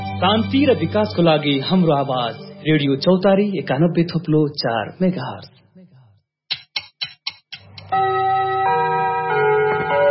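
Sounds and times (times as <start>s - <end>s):
speech: 0.2s - 5.6s
clock ticking: 6.5s - 8.7s
clock chime of layered bell-like tones marking twelve noon: 7.9s - 10.0s.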